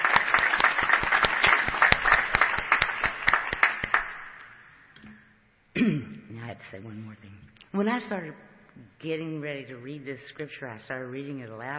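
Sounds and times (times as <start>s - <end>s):
audience applause: 0.0s - 4.4s
speech: 6.7s - 11.7s.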